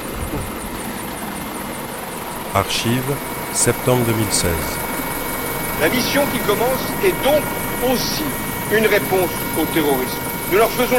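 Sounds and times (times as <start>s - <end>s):
Lynx military helicopter engine and rotor roar taking off: 0.0s - 10.9s
speech: 2.5s - 4.8s, 5.8s - 10.9s.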